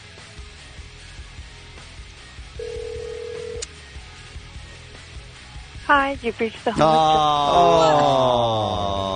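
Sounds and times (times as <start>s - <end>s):
buzzing ringback tone on an outgoing phone call: 2.6s - 3.6s
speech: 5.9s - 9.1s
laughter: 6.6s - 9.1s.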